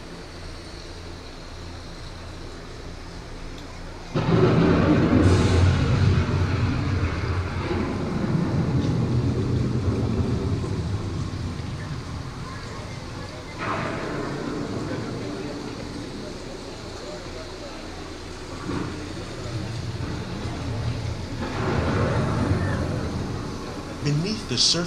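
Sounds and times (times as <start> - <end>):
roar of wind with deep rumbling undertone from approaching storm: 4.2 - 16.6, 18.6 - 24.1
speech: 24.5 - 24.8.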